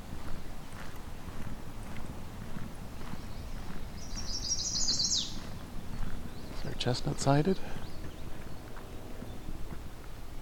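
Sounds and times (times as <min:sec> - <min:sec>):
soft crunching footsteps of someone walking alongside a road: 0:00.0 - 0:10.3
steady low outdoor rumble at the Currie Tract in Halton region: 0:00.0 - 0:10.4
mourning warbler singing: 0:03.0 - 0:09.7
speech: 0:06.8 - 0:07.8.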